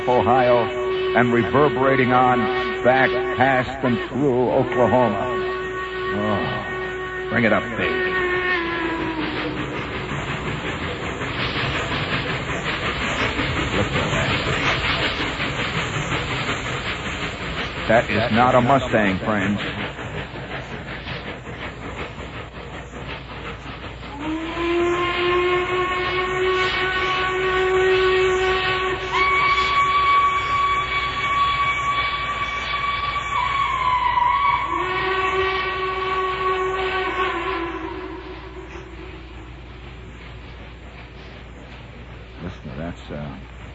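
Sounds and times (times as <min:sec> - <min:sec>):
speech: 0:00.0 - 0:05.3, 0:06.1 - 0:06.7, 0:07.3 - 0:08.1, 0:17.9 - 0:19.8
train whistle blasts: 0:00.0 - 0:10.6, 0:24.1 - 0:39.8
train rumbling past: 0:00.0 - 0:43.7.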